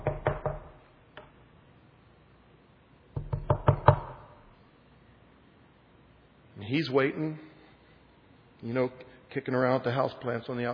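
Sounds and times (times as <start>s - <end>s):
knocking on a door: 0.0s - 0.8s, 3.2s - 4.3s
speech: 6.7s - 7.5s, 8.6s - 10.7s.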